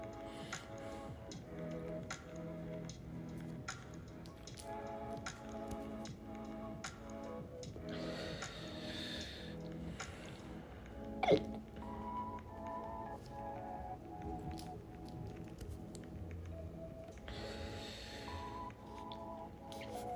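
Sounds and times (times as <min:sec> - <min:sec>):
faint tonal music: 0:00.0 - 0:20.1
sharp abrupt hiccup: 0:11.2 - 0:11.5.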